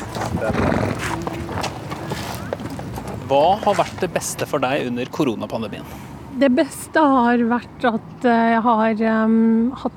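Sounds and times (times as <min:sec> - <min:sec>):
horse and pony hoof clops on grass: 0:00.0 - 0:04.1
summer outdoor ambience at a farm: 0:00.0 - 0:09.9
speech: 0:00.3 - 0:01.4, 0:03.3 - 0:09.9.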